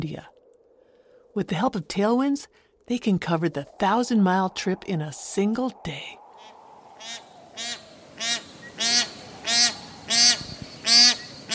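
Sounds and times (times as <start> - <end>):
speech: 0.0 - 0.4, 1.4 - 6.2, 7.0 - 7.3
bar-headed geese honking with nasal calls: 7.0 - 11.5.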